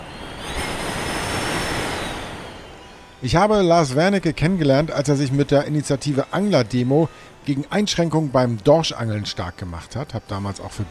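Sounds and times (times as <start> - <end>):
wind howling through a gap at a dining room door: 0.0 - 4.5
speech: 3.2 - 10.8.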